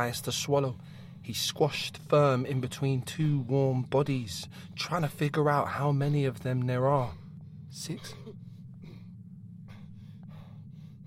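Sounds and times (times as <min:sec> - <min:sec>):
speech: 0:00.0 - 0:08.2
constant low rumble of a moving van: 0:00.0 - 0:11.0
heavy panicked breathing of a person in the back of a moving van: 0:00.8 - 0:01.3, 0:04.4 - 0:04.8, 0:07.0 - 0:11.0.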